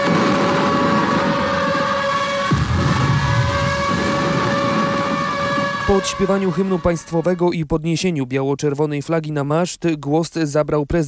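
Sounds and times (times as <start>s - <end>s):
piercing air-raid sirens wailing at a memorial ceremony at dawn: 0.0s - 7.7s
rumbling outdoor background: 0.0s - 11.0s
speech: 5.9s - 11.0s.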